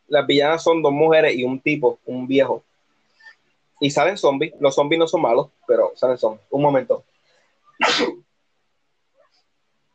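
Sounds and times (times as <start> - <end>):
speech: 0.1 - 2.7, 3.8 - 7.1, 7.8 - 8.2
sneeze: 7.8 - 8.3.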